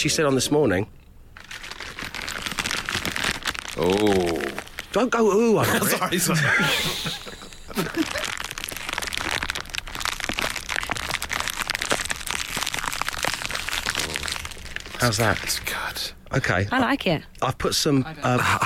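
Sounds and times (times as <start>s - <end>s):
speech: 0.0s - 1.0s, 3.8s - 8.3s, 15.0s - 18.6s
plastic bag of screws and wooden pegs rustling: 1.4s - 5.9s, 7.2s - 16.0s
laughter: 5.6s - 8.3s.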